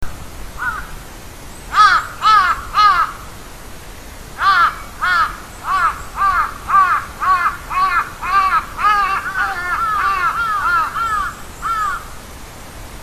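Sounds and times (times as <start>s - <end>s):
carrion crow calling at a war memorial: 0.6s - 1.0s, 1.7s - 3.3s, 4.4s - 12.2s.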